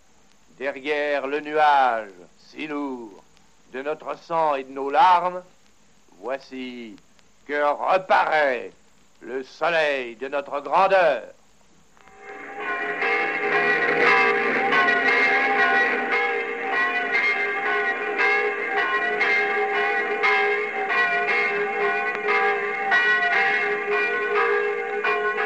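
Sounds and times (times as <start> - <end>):
speech: 0.6 - 5.5, 6.2 - 11.4
several church bells pealing: 12.0 - 25.4.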